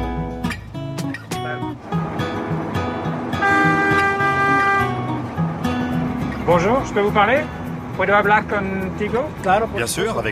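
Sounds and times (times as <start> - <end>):
autoferro rail bus engine rumbling in Ecuador: 0.0 - 10.2
autoferro rail bus horn blast in Ecuador: 3.1 - 5.3
short tonal toots of an autoferro rail bus: 3.3 - 5.2
speech: 6.5 - 10.2.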